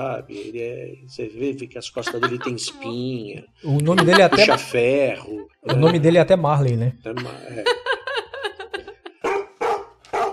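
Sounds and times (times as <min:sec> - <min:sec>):
speech: 0:00.0 - 0:07.8
laughter: 0:00.0 - 0:09.2
Newfoundland dog barking: 0:09.2 - 0:10.3.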